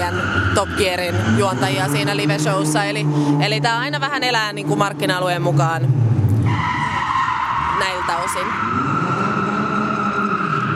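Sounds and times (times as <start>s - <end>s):
loud sports car engine drone: 0.0s - 6.6s, 7.6s - 10.7s
white and black sports car tires squealing during grip test: 0.0s - 10.7s
speech: 0.1s - 6.0s, 7.8s - 8.9s.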